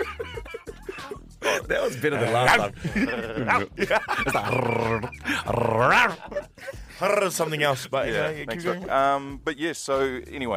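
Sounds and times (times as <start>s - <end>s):
laughter: 0.0s - 6.8s
speech: 1.5s - 6.4s, 7.0s - 10.5s
person imitating a growling chihuahua: 4.4s - 6.3s.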